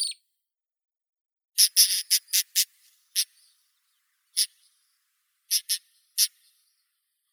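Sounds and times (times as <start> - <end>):
pied wheatear Oenanthe pleschanka: 1.6 - 3.5, 5.5 - 6.3.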